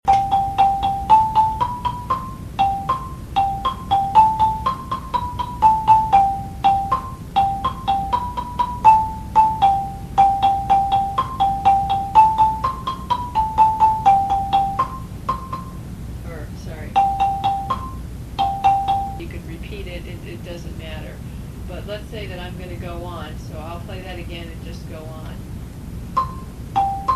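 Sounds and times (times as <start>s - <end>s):
high lead marimba melody: 0.0s - 15.8s, 16.9s - 19.3s, 26.2s - 27.1s.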